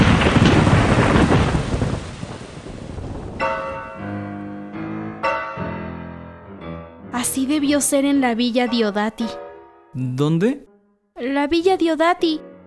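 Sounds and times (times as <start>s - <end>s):
steady rain: 0.0s - 3.7s
deep loud rumble of thunder: 0.0s - 4.3s
speech: 7.5s - 9.4s, 10.0s - 12.5s.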